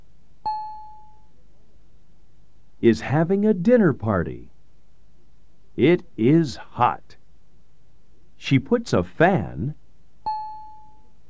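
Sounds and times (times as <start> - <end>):
speech: 2.8 - 4.5, 5.8 - 7.2, 8.4 - 9.8
doorbell chime: 10.3 - 11.1.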